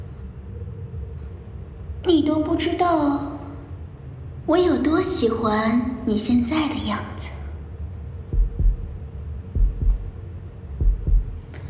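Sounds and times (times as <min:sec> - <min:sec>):
soft rumbling hum: 0:00.0 - 0:11.6
speech: 0:02.0 - 0:03.3, 0:04.5 - 0:07.4
low fast heartbeat thumping in lub-dub pairs: 0:08.2 - 0:11.6.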